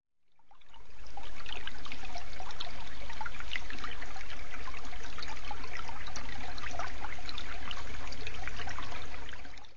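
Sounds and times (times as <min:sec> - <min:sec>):
liquid flowing: 0:00.2 - 0:09.7.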